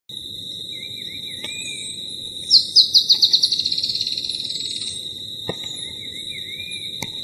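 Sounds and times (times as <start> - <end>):
Drymophila malura calling: 0.7 - 7.2.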